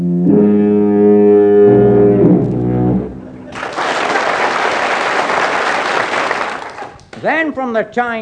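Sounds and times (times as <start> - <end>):
long deep foghorn blasts played by a performing act: 0.0 - 3.4
enthusiastic applause: 3.5 - 7.2
speech: 7.5 - 8.1.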